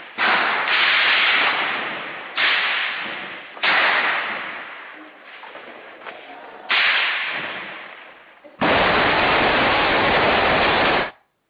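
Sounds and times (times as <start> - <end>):
loud explosions from shelling of a mosque: 0.0 - 6.1, 6.7 - 11.2
long continuous roaring burst of noise: 8.6 - 11.2.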